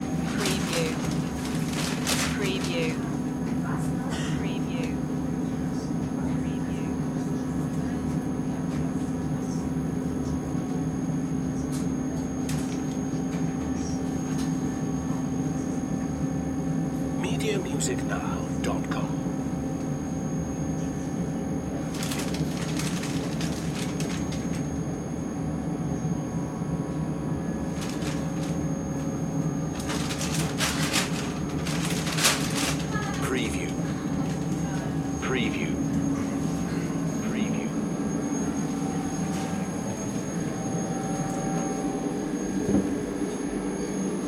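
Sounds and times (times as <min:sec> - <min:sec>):
train ambience in Germany: 0:00.0 - 0:16.2, 0:17.0 - 0:20.0, 0:20.7 - 0:44.2.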